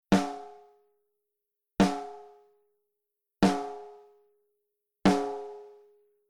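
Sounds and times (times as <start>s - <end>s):
snare drum through preamp with high input and low output: 0.2s - 0.6s, 3.4s - 3.9s, 5.1s - 5.6s.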